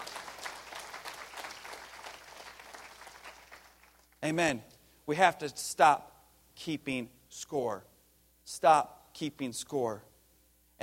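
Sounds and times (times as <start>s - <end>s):
crowd applauding: 0.0s - 4.2s
speech: 4.2s - 7.9s, 8.5s - 10.1s.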